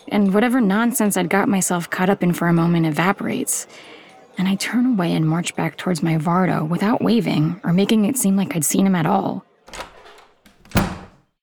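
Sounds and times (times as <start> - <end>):
speech: 0.1 - 9.9
door slamming shut: 9.7 - 11.3.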